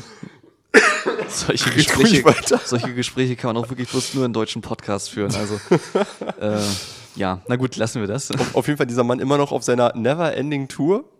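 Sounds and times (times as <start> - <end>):
person coughing: 0.0 - 2.9
laughter: 0.8 - 3.2, 5.2 - 6.9
speech: 1.3 - 11.1.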